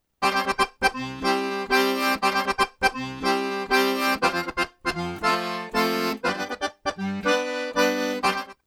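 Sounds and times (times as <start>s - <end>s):
accordion playing arrocha: 0.2s - 8.6s.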